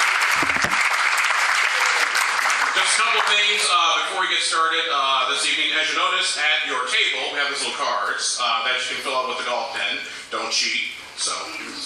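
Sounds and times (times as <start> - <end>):
low rumble of crowd noise at a comedy show: 0.0 - 1.0
audience applause at a comedy show: 0.0 - 4.1
speech: 3.0 - 11.8.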